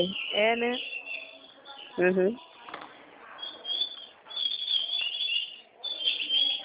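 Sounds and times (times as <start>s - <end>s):
low harmonic bird call: 0.0s - 2.0s, 3.4s - 6.6s
many small birds chirping and twittering in a home aviary: 0.0s - 2.7s, 3.3s - 6.6s.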